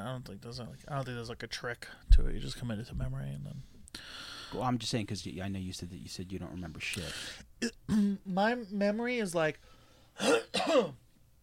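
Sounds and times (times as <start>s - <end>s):
speech: 0.2s - 11.0s
person clearing throat: 7.6s - 8.2s, 10.2s - 11.0s.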